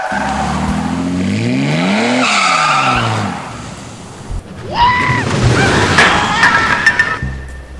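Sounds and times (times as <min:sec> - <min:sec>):
car engine revving hard and pulling away: 0:00.0 - 0:04.4
car tires screeching as it skids: 0:00.0 - 0:07.7.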